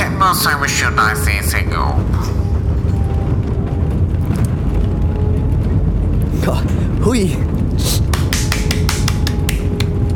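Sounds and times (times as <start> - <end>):
passenger airplane landing roar: 0.0 - 10.1
speech: 0.3 - 2.4, 6.4 - 8.0
faint whining tones: 0.8 - 7.8.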